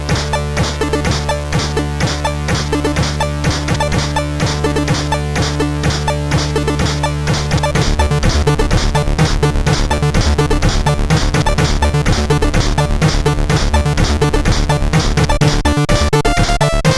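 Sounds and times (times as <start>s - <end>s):
metal beat: 0.1s - 16.9s.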